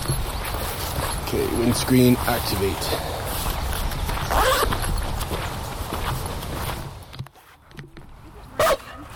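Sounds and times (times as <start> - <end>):
steady wind-like outdoor noise: 0.0 - 9.1
speech: 1.3 - 3.2
dogs barking excitedly: 8.6 - 9.1.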